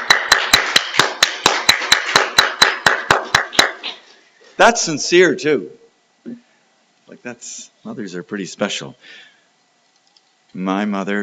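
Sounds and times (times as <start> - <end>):
applause for the mothers on Mother's Day morning: 0.0 - 3.8
speech: 4.6 - 5.8, 7.2 - 9.3, 10.5 - 11.2.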